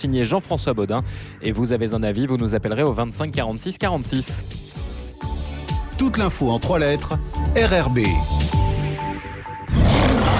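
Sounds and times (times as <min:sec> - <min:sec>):
speech: 0:00.0 - 0:04.9, 0:06.0 - 0:08.6
lion roar sound effect in a car advertisement: 0:09.7 - 0:10.3.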